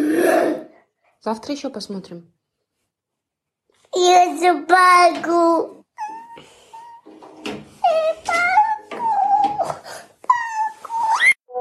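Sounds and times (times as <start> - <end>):
speech: 1.2 - 2.4, 3.9 - 5.8
small child crying and wailing after a cartoon is switched off: 6.0 - 7.1, 7.8 - 11.5.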